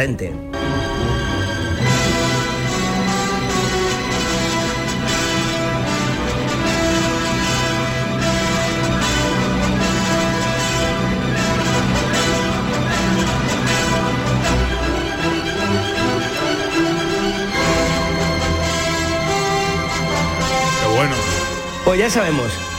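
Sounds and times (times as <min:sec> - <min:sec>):
speech: 0:00.0 - 0:01.2, 0:21.9 - 0:22.7
orchestral symphony final movement with full strings and winds: 0:00.0 - 0:22.7.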